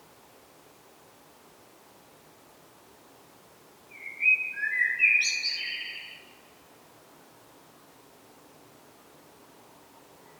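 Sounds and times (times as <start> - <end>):
Common blackbird (Turdus merula) mellow whistled phrase and squeaky high twitter: 3.9 - 6.2.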